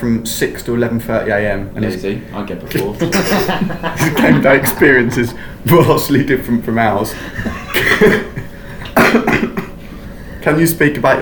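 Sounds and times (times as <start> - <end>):
speech: 0.0 - 8.4, 9.0 - 9.5, 10.4 - 11.1
laughter: 2.8 - 6.1, 7.1 - 9.8
person coughing: 7.7 - 9.8.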